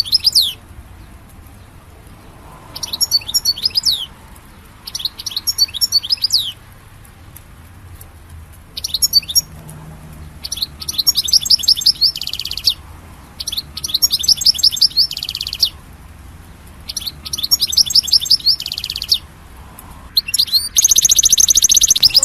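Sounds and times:
European goldfinch singing twitters and buzzy trills: 0:00.0 - 0:01.1, 0:02.2 - 0:06.6, 0:08.7 - 0:09.6, 0:10.2 - 0:15.8, 0:16.8 - 0:19.4, 0:20.1 - 0:22.2.

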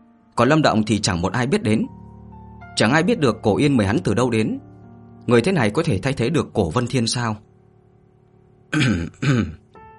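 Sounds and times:
speech: 0:00.4 - 0:02.0, 0:02.8 - 0:04.7, 0:05.3 - 0:07.5, 0:08.7 - 0:09.6
soft rough throat clearing: 0:08.7 - 0:09.7.

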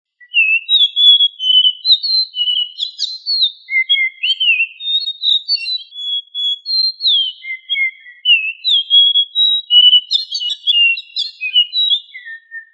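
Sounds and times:
bird song of varied whistled phrases in Indonesia: 0:00.1 - 0:12.7.

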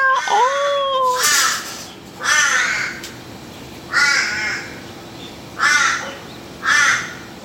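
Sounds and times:
Australian crows giving cat-like yowling calls: 0:00.1 - 0:03.1, 0:03.9 - 0:04.9, 0:05.5 - 0:07.4.

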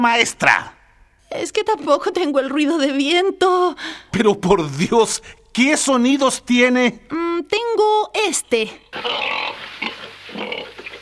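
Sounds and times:
speech: 0:00.0 - 0:09.6
pig oinking in a recorded sound effect: 0:08.9 - 0:11.0.

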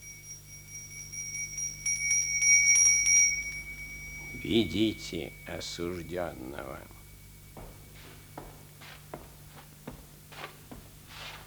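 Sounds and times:
small bronze handbell decorated with a lion rung by hand: 0:00.0 - 0:09.8
speech: 0:04.4 - 0:07.0.

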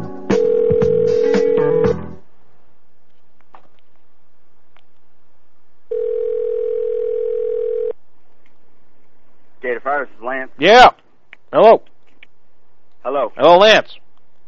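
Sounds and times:
steady telephone dial tone: 0:00.3 - 0:01.9, 0:05.9 - 0:08.0
speech: 0:10.6 - 0:11.0, 0:11.5 - 0:11.9, 0:13.1 - 0:14.0.

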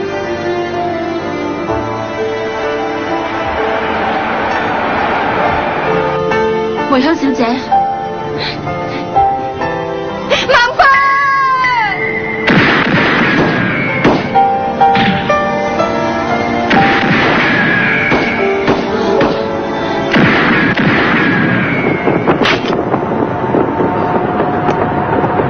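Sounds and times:
dense sustained tonal backdrop: 0:00.0 - 0:25.4
speech: 0:07.0 - 0:07.8
gunshots from a six-shot gun in an animated action scene: 0:12.4 - 0:15.3, 0:16.7 - 0:19.5, 0:20.1 - 0:22.8.

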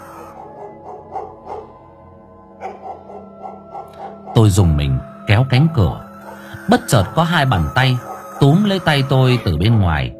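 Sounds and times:
dogs barking in a village: 0:00.0 - 0:05.3, 0:05.9 - 0:10.1
speech: 0:04.4 - 0:06.0, 0:06.7 - 0:10.1.

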